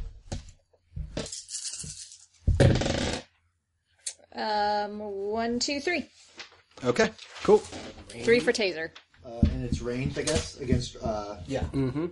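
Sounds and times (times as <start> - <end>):
eight dice rattling on a hard tabletop: 1.1 - 3.2
speech: 4.4 - 12.1.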